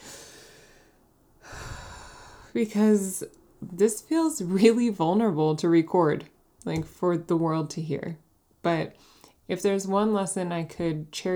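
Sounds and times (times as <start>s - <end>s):
deep breath: 0.0s - 2.6s
speech: 2.6s - 11.3s.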